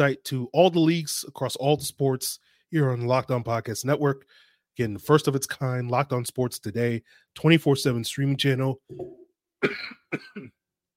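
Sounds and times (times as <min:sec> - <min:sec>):
speech: 0:00.0 - 0:10.6
person coughing: 0:08.9 - 0:10.6.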